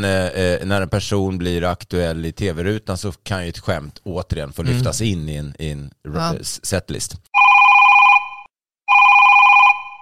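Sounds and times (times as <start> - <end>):
speech: 0.0 - 7.3
telephone ringing: 7.4 - 9.9.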